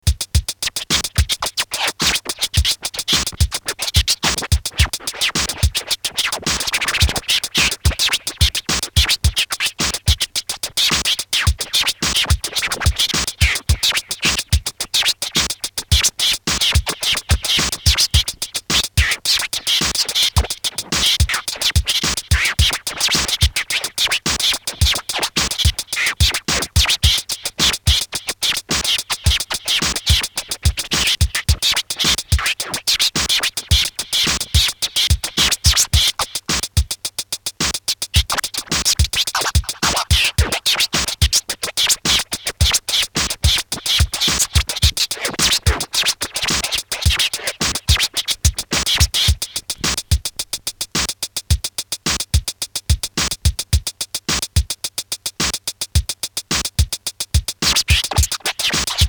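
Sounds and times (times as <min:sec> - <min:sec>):
hardcore beat: 0:00.0 - 0:59.0
record scratching: 0:00.6 - 0:36.7, 0:37.6 - 0:51.1, 0:57.6 - 0:59.0.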